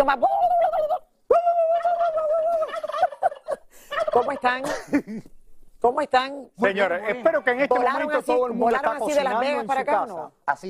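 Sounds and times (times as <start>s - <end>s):
speech: 0.0s - 0.8s, 4.2s - 10.6s
person in a studio imitating a turkey gobble: 0.2s - 4.5s.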